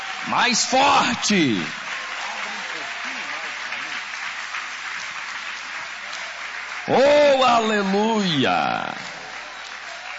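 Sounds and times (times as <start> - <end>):
audience at a morning church service clapping: 0.0 - 10.1
speech: 0.2 - 1.8, 6.9 - 9.1.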